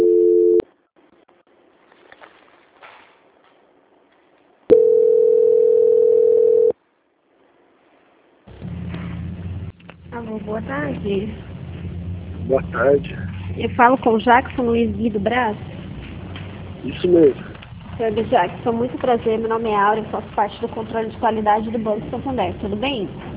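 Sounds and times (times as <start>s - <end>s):
telephone tones during a call transfer: 0.0s - 0.6s, 4.7s - 6.8s
speech: 10.6s - 11.5s, 12.5s - 15.7s, 16.8s - 23.3s.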